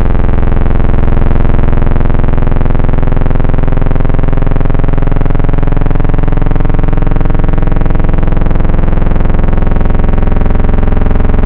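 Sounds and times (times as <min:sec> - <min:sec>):
sweeping synthwave wavetable bass: 0:00.0 - 0:11.4.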